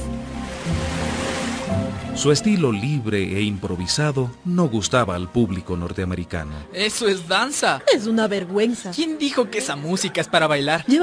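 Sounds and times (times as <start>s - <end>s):
ocean waves breaking on the shore: 0.0s - 2.3s
speech: 2.2s - 11.0s.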